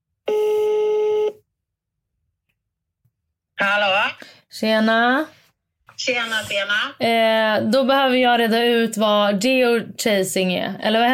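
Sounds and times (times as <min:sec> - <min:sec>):
telephone dialling tone: 0:00.3 - 0:01.4
speech: 0:04.5 - 0:05.4, 0:06.0 - 0:11.1.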